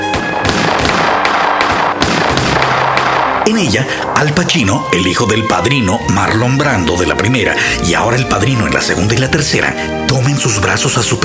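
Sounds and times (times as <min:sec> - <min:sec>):
gunshots in a film shootout on theater steps: 0:00.0 - 0:04.6
speech: 0:03.5 - 0:11.2.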